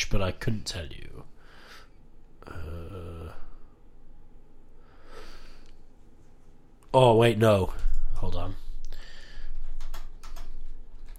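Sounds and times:
speech: 0:00.0 - 0:01.3, 0:06.9 - 0:08.6
typing on a computer keyboard: 0:09.6 - 0:11.1.

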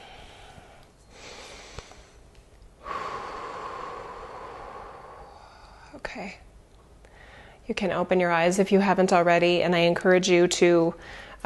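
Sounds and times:
deep breath during a guided relaxation: 0:00.0 - 0:06.0, 0:07.1 - 0:07.6, 0:11.0 - 0:11.4
speech: 0:06.1 - 0:06.5, 0:07.7 - 0:11.4.

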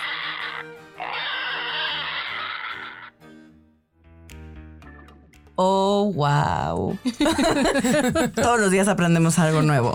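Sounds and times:
pig grunting and squealing: 0:00.0 - 0:03.2
speech: 0:05.6 - 0:09.9
laughter: 0:07.1 - 0:08.6.

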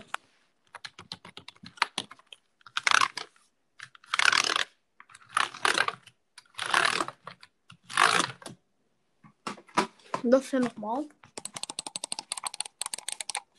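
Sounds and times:
computer keyboard typing: 0:00.6 - 0:08.2, 0:11.2 - 0:13.5
speech: 0:10.2 - 0:11.2.

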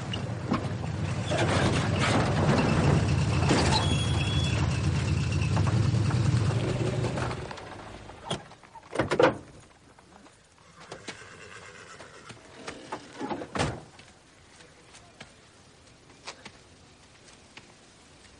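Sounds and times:
old car engine rumbling while driving: 0:00.0 - 0:09.4.

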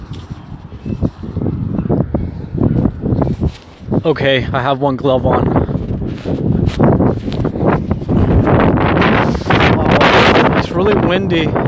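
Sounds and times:
strong cold wind buffeting a phone microphone: 0:00.0 - 0:11.6
speech: 0:04.0 - 0:05.6, 0:06.3 - 0:07.5, 0:10.9 - 0:11.6.

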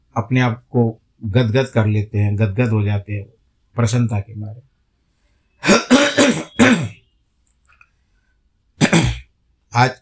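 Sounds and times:
speech: 0:00.2 - 0:04.7, 0:05.6 - 0:06.9, 0:09.8 - 0:10.0
person coughing and clearing throat: 0:05.6 - 0:07.0, 0:08.8 - 0:09.3.

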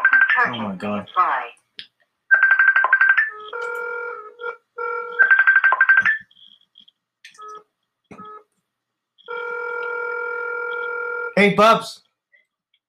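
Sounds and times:
telephone ringing during a call: 0:00.0 - 0:00.6, 0:02.3 - 0:06.7, 0:07.3 - 0:08.5, 0:09.2 - 0:11.4
speech: 0:00.4 - 0:01.6, 0:11.4 - 0:12.0.

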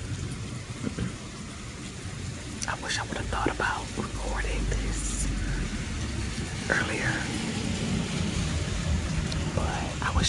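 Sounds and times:
steady rain after a thunderstorm: 0:00.0 - 0:10.2
speech: 0:02.9 - 0:05.1, 0:06.7 - 0:07.6.

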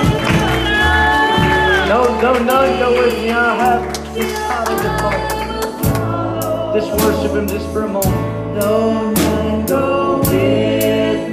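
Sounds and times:
audience clapping and cheering: 0:00.0 - 0:06.3
speech: 0:02.2 - 0:05.4, 0:06.8 - 0:10.6.

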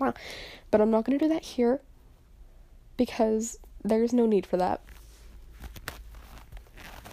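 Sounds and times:
speech: 0:00.1 - 0:01.9, 0:03.0 - 0:05.0
sock rubbing against a phone: 0:04.9 - 0:07.1.

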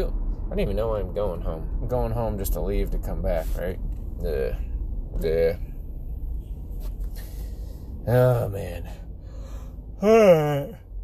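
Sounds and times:
speech: 0:00.0 - 0:05.7, 0:08.0 - 0:09.0, 0:10.0 - 0:10.8
person yawning: 0:10.0 - 0:10.8.

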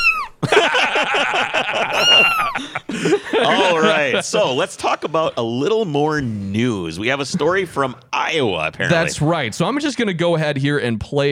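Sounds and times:
cats meowing and yowling: 0:00.0 - 0:00.4, 0:01.9 - 0:02.6
laughter: 0:00.4 - 0:05.6
speech: 0:03.4 - 0:11.3.

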